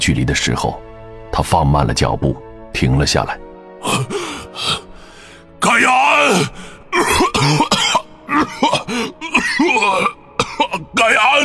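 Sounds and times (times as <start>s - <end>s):
speech: 0.0s - 4.8s, 5.6s - 7.8s, 11.0s - 11.4s
wounded man coughing after a deep breath: 3.8s - 5.0s, 6.2s - 11.4s.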